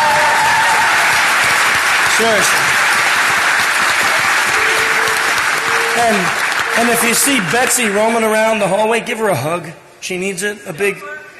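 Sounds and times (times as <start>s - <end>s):
loud applause from a large crowd: 0.0s - 9.0s
speech: 2.2s - 2.6s, 6.0s - 11.2s.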